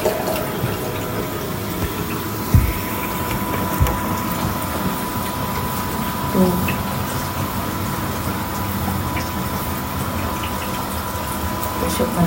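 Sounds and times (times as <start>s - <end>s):
automatic toilet flushing water: 0.0s - 12.2s
faint thuds: 1.8s - 4.6s.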